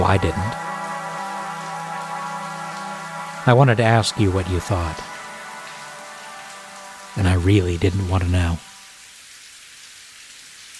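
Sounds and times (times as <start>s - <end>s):
steady rain pattering on a hard surface: 0.0s - 10.7s
speech: 0.1s - 0.7s, 3.4s - 5.2s, 7.2s - 8.7s.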